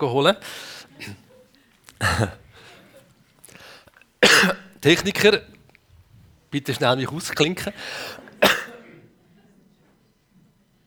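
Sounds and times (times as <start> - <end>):
speech: 0.0 - 1.2, 2.0 - 2.4, 4.4 - 5.5, 6.5 - 8.6
throat-clearing rasps: 1.0 - 2.6, 8.4 - 9.0
person coughing: 2.0 - 2.5, 4.2 - 4.6, 8.4 - 9.0.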